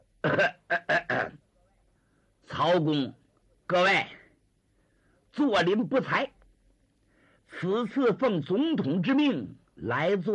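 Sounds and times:
man imitating coughing: 0:00.2 - 0:01.4
man imitating throat clearing: 0:00.2 - 0:01.4
speech: 0:02.8 - 0:04.2, 0:05.4 - 0:06.3, 0:07.5 - 0:10.3.

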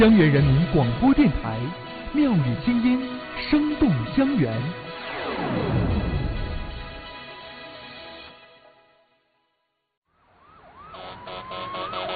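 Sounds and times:
speech: 0:00.0 - 0:04.8, 0:05.4 - 0:05.8
ambulance siren wailing: 0:10.1 - 0:12.1.

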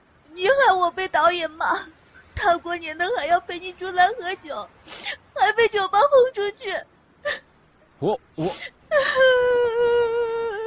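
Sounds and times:
speech: 0:00.7 - 0:07.4, 0:08.0 - 0:09.6
person crying in a quavering wail: 0:08.4 - 0:10.6.

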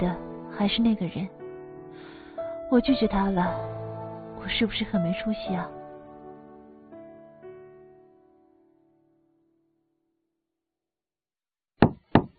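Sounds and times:
speech: 0:00.0 - 0:01.4, 0:02.7 - 0:03.8, 0:04.4 - 0:05.8
knocking on a door: 0:11.8 - 0:12.3.

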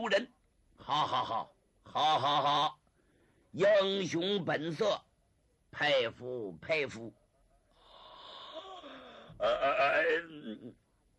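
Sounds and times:
speech: 0:00.0 - 0:02.8, 0:03.5 - 0:05.1, 0:05.7 - 0:07.2, 0:09.4 - 0:10.8
man's voice imitating a long yawn: 0:07.8 - 0:10.8.

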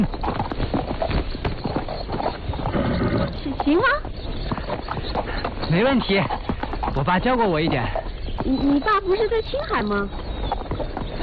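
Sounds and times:
ridden horse hooves clip-clopping at a walk: 0:00.0 - 0:11.2
speech: 0:03.7 - 0:04.9, 0:05.7 - 0:10.2.

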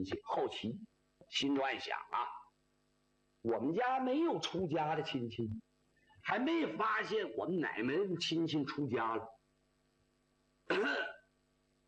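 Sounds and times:
speech: 0:00.0 - 0:02.4, 0:03.4 - 0:09.4
person coughing: 0:10.7 - 0:11.2.

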